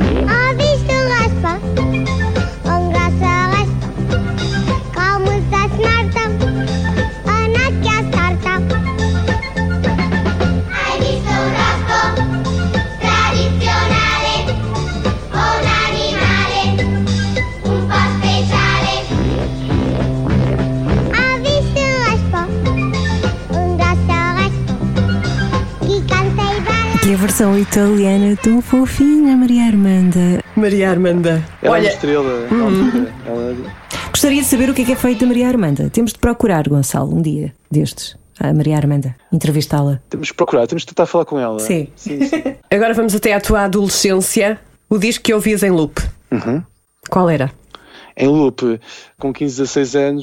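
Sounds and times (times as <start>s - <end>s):
children's song recording with bouncy full-band accompaniment: 0.2s - 19.8s, 20.9s - 29.4s, 32.0s - 35.6s
speech: 27.7s - 47.6s, 48.2s - 50.2s
laughter: 31.9s - 33.6s, 42.0s - 42.6s.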